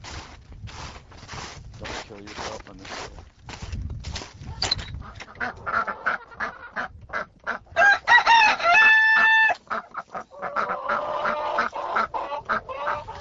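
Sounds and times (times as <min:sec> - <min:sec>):
speech: 0:02.1 - 0:03.3, 0:05.4 - 0:05.9
chickens clucking: 0:04.4 - 0:13.1
rooster crowing: 0:07.8 - 0:09.6.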